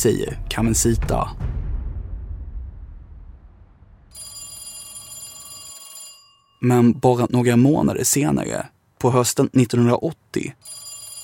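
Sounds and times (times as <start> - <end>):
speech: 0.0 - 1.5, 6.6 - 10.8
low rumbling swell: 0.0 - 4.2
telephone ringing with a bright metallic bell tone: 4.1 - 7.0, 10.6 - 11.2.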